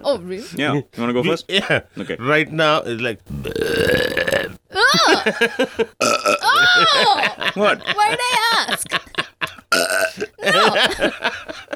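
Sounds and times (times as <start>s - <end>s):
speech: 0.0s - 4.2s, 5.0s - 9.2s, 10.5s - 11.7s
person burping on demand: 3.3s - 4.6s, 6.0s - 6.6s, 9.7s - 10.4s
throaty belch: 3.3s - 4.6s, 6.0s - 6.4s, 9.7s - 10.4s
laughter: 4.8s - 11.7s.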